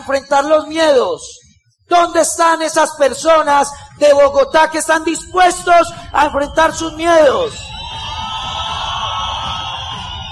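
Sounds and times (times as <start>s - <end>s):
speech: 0.0s - 7.6s
large crowd shouting and cheering: 5.0s - 10.3s.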